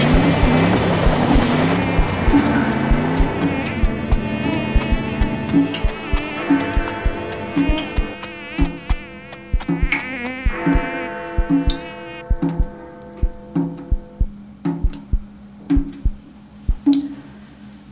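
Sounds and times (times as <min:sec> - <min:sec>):
mosquito buzzing close to the ear: 0:00.0 - 0:14.2
sharp clicks and taps: 0:00.0 - 0:17.1.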